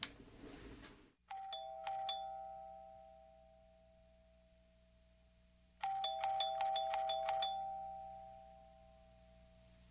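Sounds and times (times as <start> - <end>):
electronic doorbell ding-dong: 1.3 - 4.9, 5.8 - 9.6.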